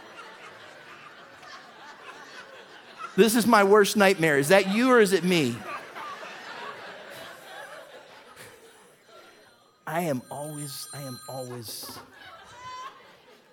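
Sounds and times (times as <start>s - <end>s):
scattered laughter: 0.0s - 9.5s, 11.1s - 13.5s
speech: 3.2s - 5.7s, 10.0s - 12.3s
mobile phone ringing during sermon: 9.1s - 12.2s.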